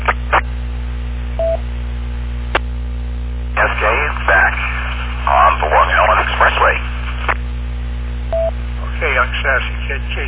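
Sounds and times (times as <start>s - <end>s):
constant low electrical hum on a phone line: 0.0s - 10.2s
electronic telephone tone beep: 1.4s - 1.6s, 8.3s - 8.6s
speech: 9.5s - 10.2s.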